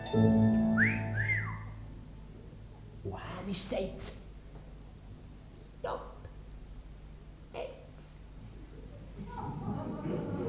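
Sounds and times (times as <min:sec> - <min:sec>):
low hum: 0:00.0 - 0:10.4
speech: 0:00.1 - 0:00.5, 0:03.5 - 0:04.2
person whistling rising sliding notes: 0:00.8 - 0:01.8
laughter: 0:08.8 - 0:10.4.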